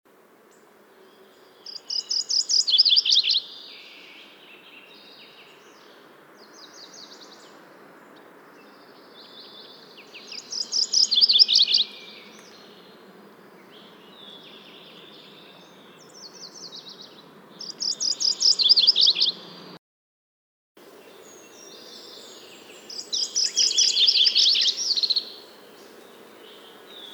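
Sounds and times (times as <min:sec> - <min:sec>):
MacGillivray's warbler Geothlypis tolmiei: 0:00.5 - 0:19.6, 0:20.8 - 0:27.1.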